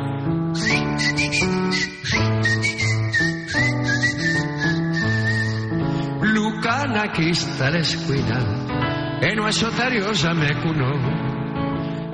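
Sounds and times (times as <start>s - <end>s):
full instrumental accompaniment: 0.2s - 6.3s
person whistling a lilting tune: 0.6s - 5.8s
speech: 7.0s - 11.4s.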